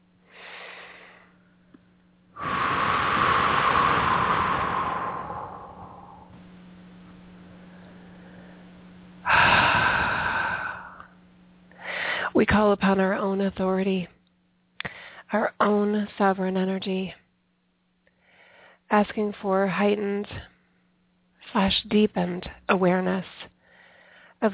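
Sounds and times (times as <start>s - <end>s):
faint steady hum: 0.0s - 24.5s
slow deep breathing: 0.3s - 1.6s, 2.4s - 6.5s, 7.6s - 12.3s, 18.1s - 18.9s, 23.6s - 24.4s
speech: 12.5s - 14.2s, 15.3s - 17.2s, 18.9s - 20.5s, 21.5s - 23.4s.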